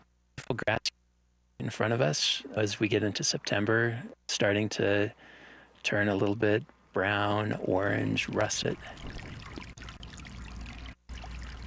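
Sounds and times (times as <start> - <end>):
speech: 0.5 - 1.0, 1.6 - 9.5
small brook trickling and babbling: 8.4 - 11.6.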